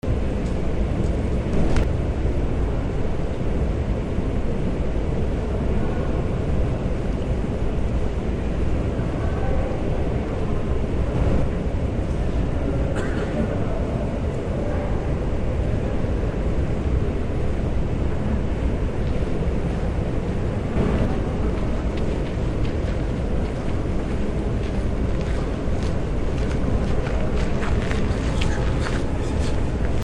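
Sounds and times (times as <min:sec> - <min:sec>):
voices in a courtyard: 0:00.2 - 0:30.0
footsteps in a courtyard: 0:20.8 - 0:30.0.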